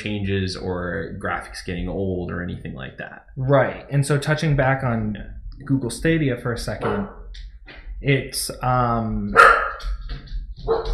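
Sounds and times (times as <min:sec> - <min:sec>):
speech: 0:00.0 - 0:09.9
low steady rumble: 0:00.0 - 0:10.9
dogs barking: 0:06.8 - 0:07.2, 0:09.3 - 0:10.0, 0:10.7 - 0:10.9.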